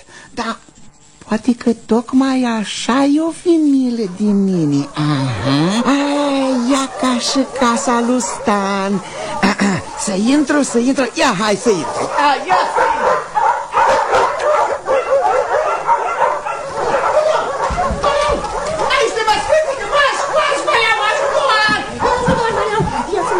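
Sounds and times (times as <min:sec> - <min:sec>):
speech: 0:00.3 - 0:06.0, 0:07.2 - 0:13.0
several dogs barking and yipping excitedly: 0:06.4 - 0:23.3.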